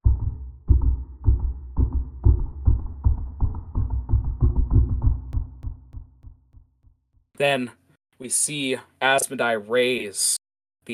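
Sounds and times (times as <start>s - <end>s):
deep booming heartbeat speeding up: 0.0s - 7.2s
speech: 7.4s - 10.9s.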